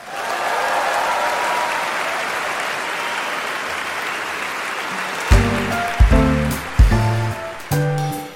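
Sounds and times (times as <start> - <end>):
large audience applause: 0.0 - 8.3
four-handed Steinway piano chords: 5.3 - 8.3.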